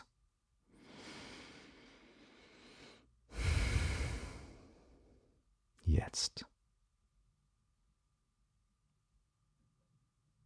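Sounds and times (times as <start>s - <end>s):
slow deep breath in and out: 0.7s - 5.3s
speech: 6.1s - 6.5s.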